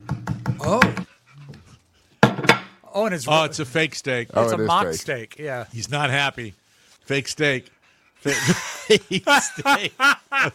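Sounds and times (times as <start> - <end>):
speech: 0.7 - 1.0, 3.0 - 10.5
dog panting heavily: 1.0 - 2.2, 7.6 - 8.8
laughter: 8.2 - 10.5.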